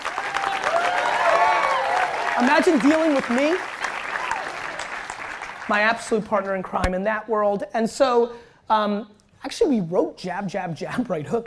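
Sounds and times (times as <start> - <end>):
crowd clapping: 0.0 - 6.7
speech: 2.4 - 3.7, 5.7 - 11.4.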